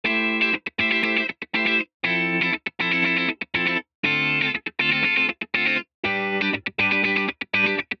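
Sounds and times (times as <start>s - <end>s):
bypassed electric guitar: 0.0s - 7.9s.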